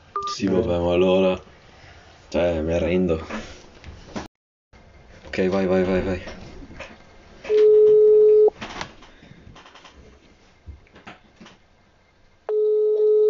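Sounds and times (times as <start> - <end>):
speech: 0.3 - 1.5, 2.3 - 3.7, 5.4 - 6.4
telephone ringback tone: 7.5 - 8.5, 12.5 - 13.2.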